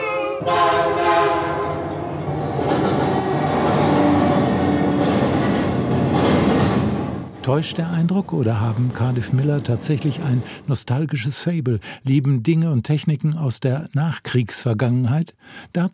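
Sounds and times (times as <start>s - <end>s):
loud approaching train with rumble and rattling wheels: 0.1s - 10.7s
wavering operatic voice from an old record in a hut beside a railway track: 7.4s - 15.9s
speech: 7.5s - 15.9s.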